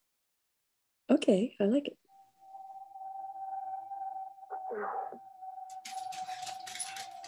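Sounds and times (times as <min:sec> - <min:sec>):
speech: 0:01.1 - 0:02.0
steady electronic tone humming in a theme tune: 0:02.1 - 0:07.2
bright dense shimmering percussion: 0:02.2 - 0:07.2.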